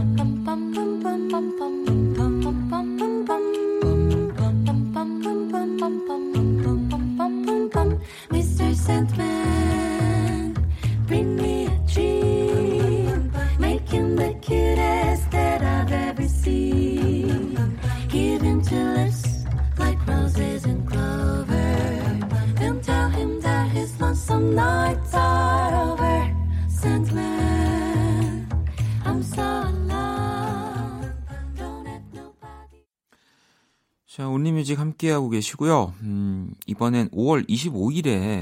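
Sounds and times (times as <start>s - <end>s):
listener-requested pop song on a radio music program: 0.0s - 32.9s
speech: 34.7s - 38.3s.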